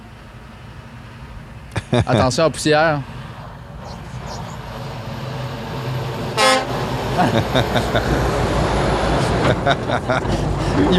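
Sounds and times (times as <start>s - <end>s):
car engine rumbling past: 0.0s - 10.9s
road noise: 0.0s - 10.9s
laughter: 1.7s - 2.4s, 7.2s - 8.4s, 9.2s - 10.9s
speech: 1.9s - 3.2s, 7.2s - 8.5s, 9.5s - 10.9s
car horn honk: 6.3s - 6.8s.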